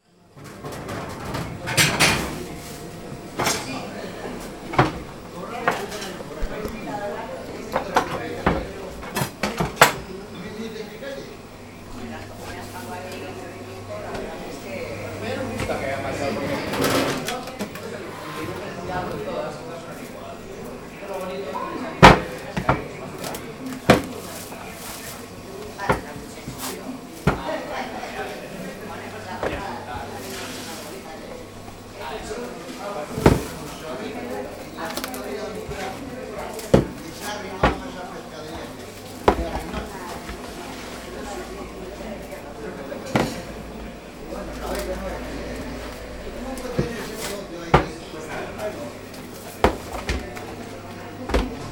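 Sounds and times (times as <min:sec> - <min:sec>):
kitchen noise in Bilbao: 0:00.0 - 0:11.0, 0:11.8 - 0:51.6.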